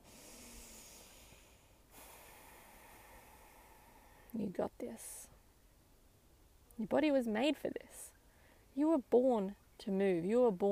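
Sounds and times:
deep heavy breathing during exercise: 0:00.0 - 0:04.4
speech: 0:04.4 - 0:05.3, 0:06.8 - 0:08.1, 0:08.8 - 0:10.7.

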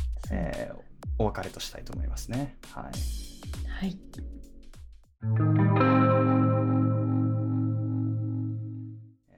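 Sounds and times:
drum hits: 0:00.0 - 0:05.0
speech: 0:00.3 - 0:04.5, 0:05.2 - 0:05.8
loud sustained effects-heavy electric guitar chord ringing out: 0:05.2 - 0:09.1.

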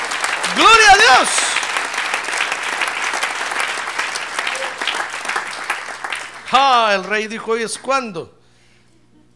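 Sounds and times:
crowd applause: 0:00.0 - 0:07.2
speech: 0:00.6 - 0:01.6, 0:06.5 - 0:08.4.

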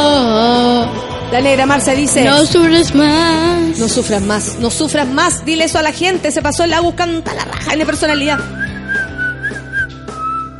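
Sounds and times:
faint music: 0:00.0 - 0:10.5
speech: 0:01.4 - 0:08.7
person whistling a short melody: 0:08.3 - 0:10.5.

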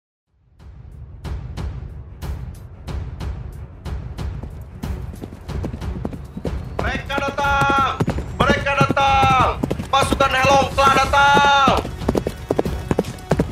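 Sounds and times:
horse being ridden hard with hooves galloping: 0:04.2 - 0:13.5.

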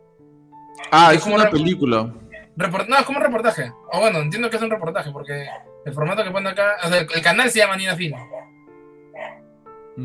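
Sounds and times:
dog barking: 0:00.8 - 0:01.5, 0:02.3 - 0:02.5, 0:05.4 - 0:06.2, 0:08.1 - 0:09.5
speech: 0:00.9 - 0:08.3.

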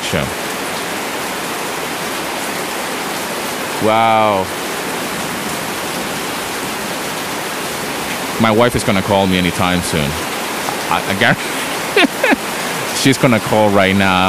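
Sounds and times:
heavy rain downpour: 0:00.0 - 0:14.2
speech: 0:00.1 - 0:00.4, 0:03.8 - 0:04.6, 0:08.4 - 0:10.3, 0:10.9 - 0:14.2
person exclaiming: 0:03.8 - 0:04.5, 0:12.0 - 0:12.4
laughter: 0:10.9 - 0:14.2.

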